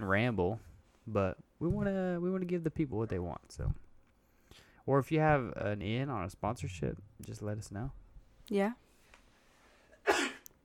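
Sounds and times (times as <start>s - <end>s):
speech: 0.0s - 3.8s, 4.5s - 8.8s
loud sneeze: 10.0s - 10.4s.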